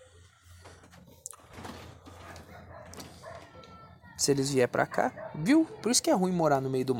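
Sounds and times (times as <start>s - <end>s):
dogs barking and yipping outdoors in a rural area: 2.0s - 4.0s, 4.7s - 6.0s
speech: 4.2s - 6.9s.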